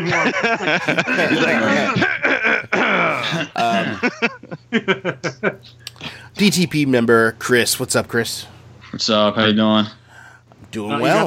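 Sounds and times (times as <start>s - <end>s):
laughter: 0.0s - 5.7s
speech: 0.0s - 10.0s, 10.7s - 11.2s
man clearing his throat: 1.5s - 4.1s.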